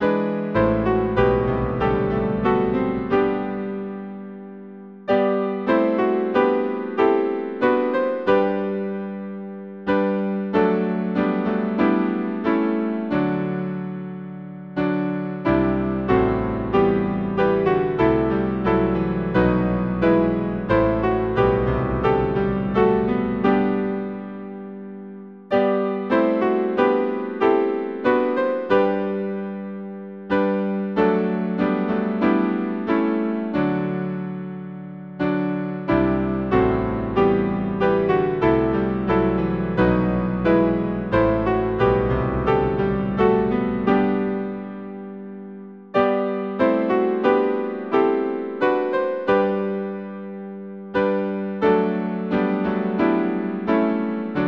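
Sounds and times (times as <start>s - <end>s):
hymn on piano: 0.0s - 54.4s.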